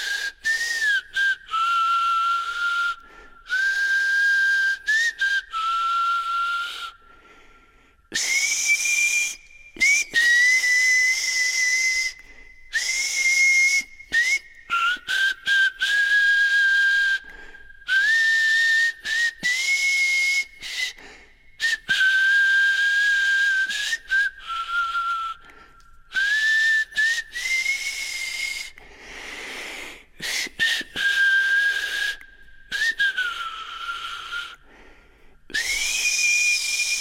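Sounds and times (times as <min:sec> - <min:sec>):
people whistling a tune together: 0:00.0 - 0:07.2, 0:08.1 - 0:34.8, 0:35.5 - 0:36.9.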